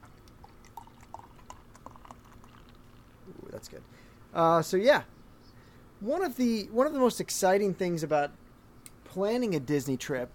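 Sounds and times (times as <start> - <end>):
beer pouring into a glass: 0.1 - 3.3
speech: 3.6 - 5.1, 6.0 - 8.4, 9.2 - 10.3.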